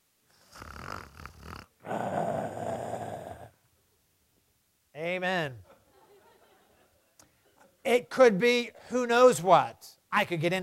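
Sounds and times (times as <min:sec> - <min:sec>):
loud rasping snores: 0:00.4 - 0:03.6
laughter: 0:05.6 - 0:07.8
speech: 0:07.9 - 0:10.6.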